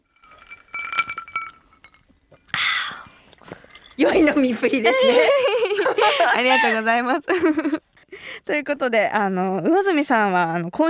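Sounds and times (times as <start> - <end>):
glasses clinking in a toast: 0.0 - 2.6, 3.4 - 5.4
small clatters: 0.0 - 4.8
speech: 4.0 - 7.9, 8.5 - 10.8
laughter: 4.8 - 7.8.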